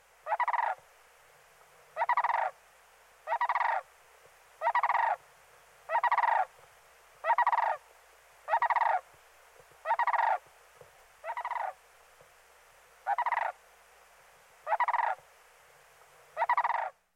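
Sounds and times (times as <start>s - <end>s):
sandhill crane call: 0.2s - 0.8s, 2.0s - 2.6s, 3.2s - 3.9s, 4.6s - 5.2s, 5.9s - 6.5s, 7.2s - 7.8s, 8.4s - 9.1s, 9.8s - 10.4s, 11.2s - 11.8s, 13.0s - 13.6s, 14.6s - 15.2s, 16.4s - 17.0s.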